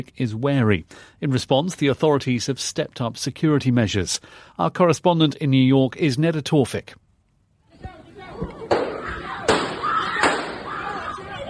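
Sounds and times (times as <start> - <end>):
speech: 0.0 - 7.0
panicked crowd voices and shouting: 7.7 - 11.4
gunshots in an enclosed space: 8.6 - 10.9.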